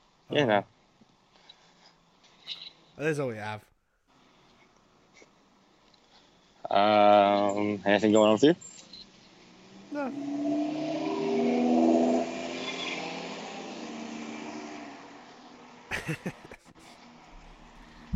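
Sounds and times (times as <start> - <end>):
speech: 0.3 - 0.8, 2.5 - 3.7, 6.7 - 8.7, 10.0 - 11.0, 16.1 - 16.4
loud car engine revving and accelerating: 9.4 - 15.9
laughter: 15.9 - 16.7.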